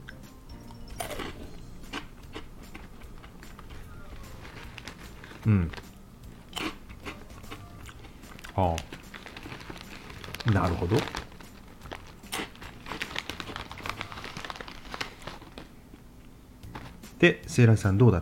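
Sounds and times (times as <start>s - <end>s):
crisp spicy curry snack being bitten and chewed: 1.0s - 5.9s, 6.5s - 15.7s
speech: 5.4s - 5.8s, 8.6s - 9.0s, 10.5s - 11.2s, 17.2s - 18.2s.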